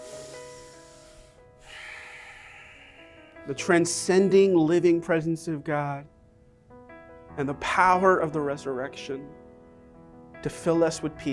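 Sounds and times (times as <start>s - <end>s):
deep breath in: 0.0s - 3.5s
faint steady sustained drone: 0.0s - 3.5s
speech: 3.5s - 6.2s, 7.4s - 9.4s, 10.4s - 11.3s.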